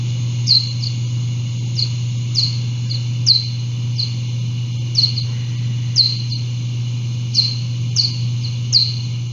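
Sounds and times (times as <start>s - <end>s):
little brown bat echolocation pulses slowed down and pitch-shifted: 0.0s - 9.3s
steady low hum: 0.0s - 9.3s.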